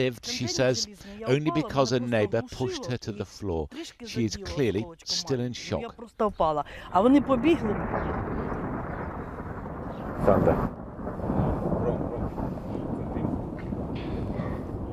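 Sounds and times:
speech: 0:00.0 - 0:08.4, 0:10.2 - 0:10.8
thunder from a passing storm over a small town: 0:06.6 - 0:14.9.

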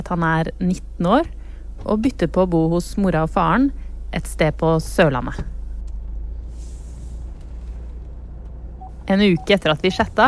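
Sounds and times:
low engine rumble of a moving car on winding roads: 0:00.0 - 0:10.2
road noise inside a moving car on winding roads: 0:00.0 - 0:10.2
speech: 0:00.1 - 0:05.5, 0:09.1 - 0:10.2
brief hiss of air: 0:05.5 - 0:07.8.

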